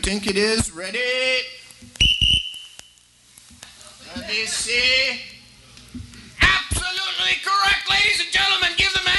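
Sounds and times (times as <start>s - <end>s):
speech: 0.0s - 1.6s, 4.1s - 5.3s, 7.3s - 9.0s
whistle blown as a round signal in a beer-guessing game: 2.0s - 3.0s.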